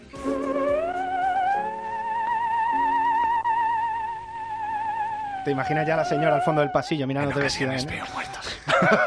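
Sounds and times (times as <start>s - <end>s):
soft low accompanying notes: 0.0s - 7.2s
theremin playing eerie wavering tones: 0.0s - 7.2s
speech: 5.5s - 9.0s
laughter: 7.2s - 9.0s.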